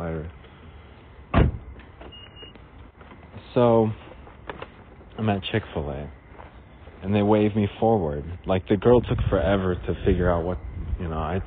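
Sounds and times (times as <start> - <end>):
car door being shut: 1.3 - 2.5
speech: 3.6 - 4.0, 5.2 - 6.2, 7.0 - 11.4.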